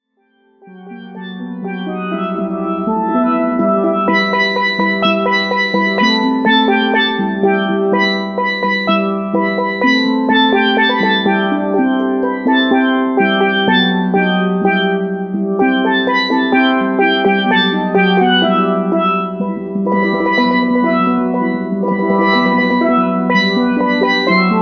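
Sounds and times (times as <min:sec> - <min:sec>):
steel drum: 0:00.6 - 0:24.6.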